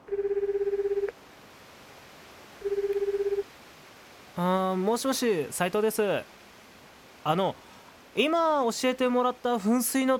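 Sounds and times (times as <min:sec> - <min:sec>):
mobile phone ringback tone after pressing the call button: 0:00.0 - 0:01.1, 0:02.6 - 0:03.5
speech: 0:04.4 - 0:06.4, 0:07.2 - 0:10.1.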